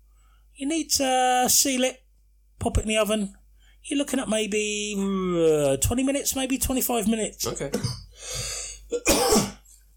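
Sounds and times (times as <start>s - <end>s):
speech: 0.6s - 2.0s, 2.6s - 9.5s
person coughing: 7.7s - 8.1s, 8.9s - 9.7s.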